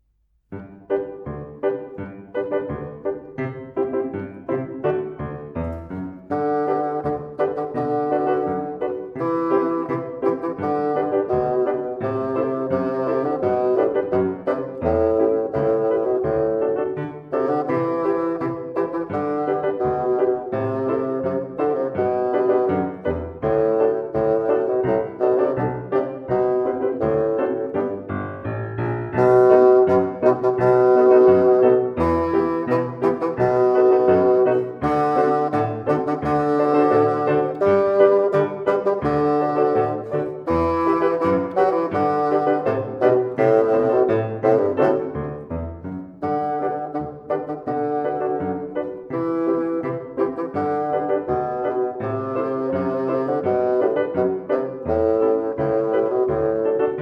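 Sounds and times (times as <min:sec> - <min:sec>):
bassoon march bass line: 0:00.9 - 0:56.9.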